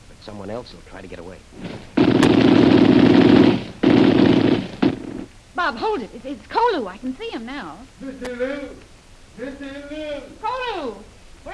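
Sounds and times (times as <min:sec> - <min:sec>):
speech: 0:00.2 - 0:02.8, 0:05.6 - 0:11.5
gunfire aimed over a man's head: 0:01.6 - 0:05.3.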